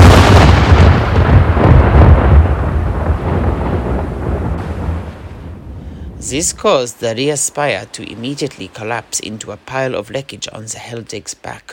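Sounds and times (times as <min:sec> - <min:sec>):
full cannon broadside fired from a ship's port side: 0:00.0 - 0:06.4
speech: 0:06.3 - 0:11.7.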